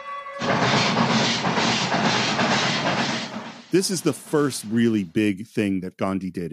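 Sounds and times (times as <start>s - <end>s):
train running on rails: 0.0s - 5.2s
speech: 3.7s - 6.5s.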